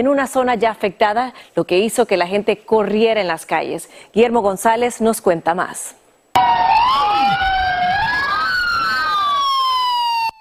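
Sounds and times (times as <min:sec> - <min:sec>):
speech: 0:00.0 - 0:07.5
wailing earthquake alarm siren in southern Turkey: 0:06.4 - 0:10.3.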